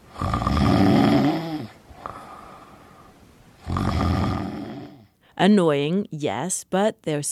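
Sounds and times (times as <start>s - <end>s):
person snoring while asleep: 0.0s - 5.1s
faint breathing: 1.3s - 5.4s
speech: 5.4s - 7.3s.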